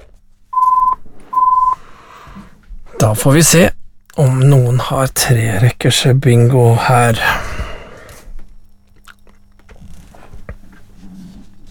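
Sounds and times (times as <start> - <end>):
telephone ringing with clean electronic beeps: 0.6 - 1.8
speech: 3.0 - 7.6.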